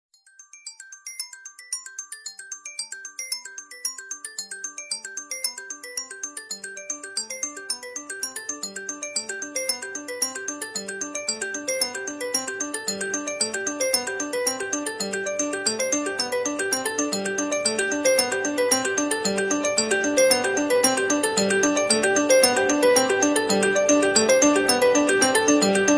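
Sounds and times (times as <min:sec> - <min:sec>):
Nokia phone ringtone: 0:09.4 - 0:25.9.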